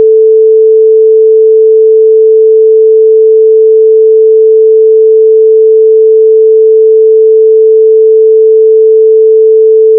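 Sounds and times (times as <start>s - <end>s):
440Hz sine wave tone: 0.0s - 9.9s.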